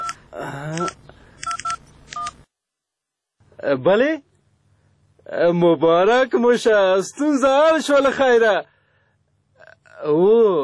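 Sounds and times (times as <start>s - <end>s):
telephone keypad beeps dialing to call home: 0.8s - 2.4s
speech: 3.7s - 4.3s, 5.3s - 8.7s, 10.0s - 10.6s.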